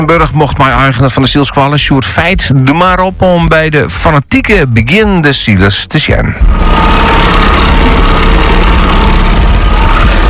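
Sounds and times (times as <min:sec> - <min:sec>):
speech: 0:00.0 - 0:08.7
small motorboat engine droning: 0:06.4 - 0:10.2.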